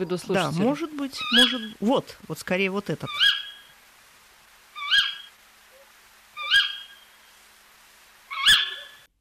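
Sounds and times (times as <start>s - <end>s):
speech: 0.0s - 3.4s
eagle owl giving harsh screeching calls: 1.2s - 1.8s, 3.1s - 3.8s, 4.7s - 7.3s, 8.3s - 9.1s.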